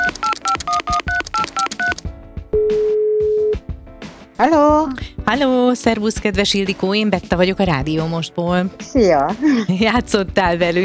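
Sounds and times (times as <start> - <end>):
touch-tone beeps as a phone number is keyed on a telephone: 0.0 - 2.0, 2.6 - 3.6
music: 0.0 - 10.8
speech: 4.4 - 10.8.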